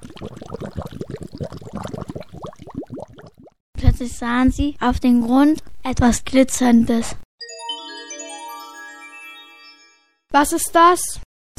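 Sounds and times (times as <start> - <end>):
dense bubbling with gurgling pops: 0.0 - 3.6
speech: 4.0 - 7.2, 10.3 - 11.2.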